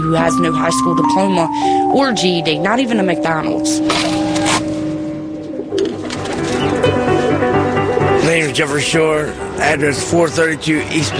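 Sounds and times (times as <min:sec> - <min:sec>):
speech: 0:00.0 - 0:04.2, 0:08.5 - 0:11.1
pigeons cooing: 0:03.9 - 0:08.2.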